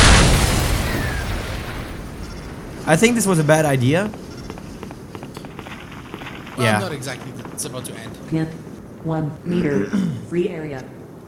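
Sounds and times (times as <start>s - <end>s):
bazooka explosion in a video game: 0.0s - 3.2s
speech: 2.9s - 4.2s, 6.6s - 11.0s.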